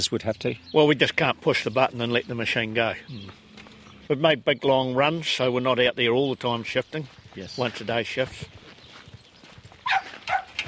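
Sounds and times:
speech: 0.0 - 3.5, 4.1 - 8.6
low outdoor noise: 0.0 - 10.6
Jack Russell terrier barking: 9.8 - 10.6.

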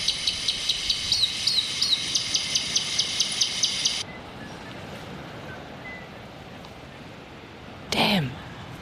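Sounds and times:
recording of robin call played near a trap baited with mealworms: 0.0 - 4.6
quiet outdoor ambience: 0.0 - 8.7.

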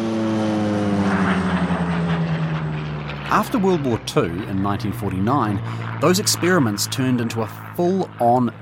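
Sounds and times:
propeller aircraft flying overhead: 0.0 - 8.6
speech: 3.3 - 8.6.

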